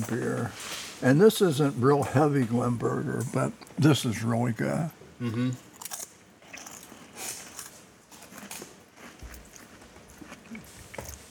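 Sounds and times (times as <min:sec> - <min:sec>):
speech: 0:00.0 - 0:05.7
people chewing crackers: 0:05.3 - 0:11.3.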